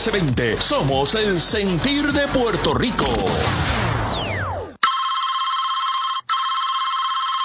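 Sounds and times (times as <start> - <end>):
speech: 0.0 - 3.8
falling electronic swoop: 3.0 - 4.8
telephone ringing unanswered: 4.8 - 7.4.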